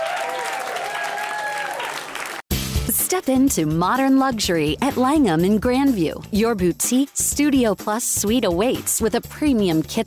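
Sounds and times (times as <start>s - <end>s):
audience applause from a live stand-up comedy crowd: 0.0s - 2.4s
speech: 3.1s - 10.0s.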